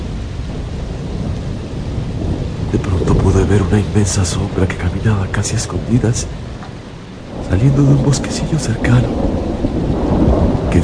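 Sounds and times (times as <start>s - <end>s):
continuous low rumble of thunder over a valley: 0.0s - 10.8s
heavy rain hissing in a thunderstorm over a valley: 0.0s - 10.8s
speech: 3.5s - 6.5s, 7.5s - 9.3s.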